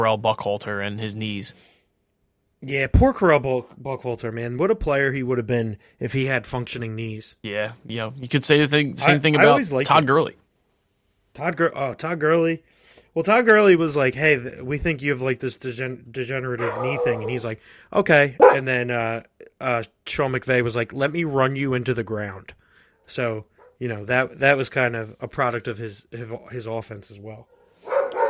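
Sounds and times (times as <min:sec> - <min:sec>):
speech: 0:00.0 - 0:01.7, 0:02.6 - 0:10.4, 0:11.4 - 0:27.5
dogs barking: 0:16.6 - 0:17.5, 0:18.4 - 0:18.7, 0:27.5 - 0:28.2.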